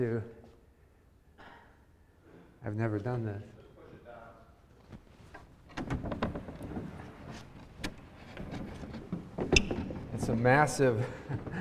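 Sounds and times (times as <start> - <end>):
speech: 0.0 - 0.4, 2.6 - 3.6, 10.3 - 11.5
large sliding blackboard panel rumbling open with a heavy grinding scrape: 5.8 - 10.4
laughter: 11.0 - 11.5.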